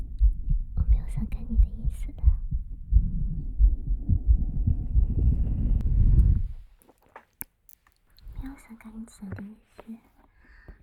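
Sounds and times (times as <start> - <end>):
heartbeat: 0.0 - 6.7
speech: 1.2 - 2.3, 9.1 - 10.1.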